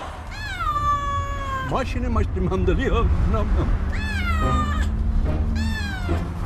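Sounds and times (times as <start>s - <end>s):
cat meowing: 0.3s - 1.8s, 3.9s - 6.3s
speech: 1.7s - 4.8s.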